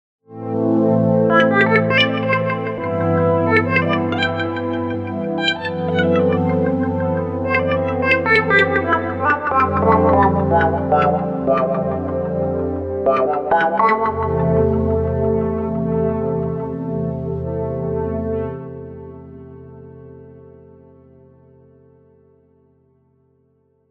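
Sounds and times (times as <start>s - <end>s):
synthesizer complex LFO modulation: 0.4s - 20.0s.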